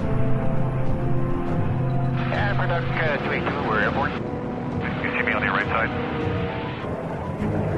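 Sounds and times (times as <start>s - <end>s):
firefighting aircraft engine drone at a forest fire: 0.0s - 7.7s
voices: 2.2s - 4.2s, 4.8s - 6.0s.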